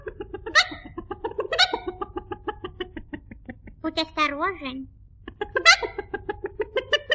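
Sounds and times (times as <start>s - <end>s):
hen clucking: 0.0s - 3.0s, 5.4s - 6.3s
laughter: 0.0s - 3.9s, 5.3s - 7.1s
hen squawking: 0.5s - 2.0s, 5.6s - 6.0s
speech: 3.8s - 5.0s.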